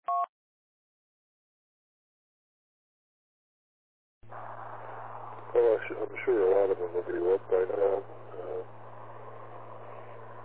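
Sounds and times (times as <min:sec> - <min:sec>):
road traffic with trucks on a wet road: 0:04.2 - 0:10.4
speech: 0:05.6 - 0:08.8.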